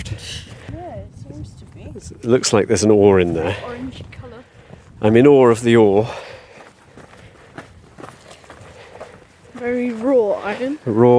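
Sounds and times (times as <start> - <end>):
speech: 1.8 - 4.1, 5.0 - 6.2, 9.6 - 11.1
footsteps on soft squidgy coal ground in a Welsh desert: 6.1 - 11.1.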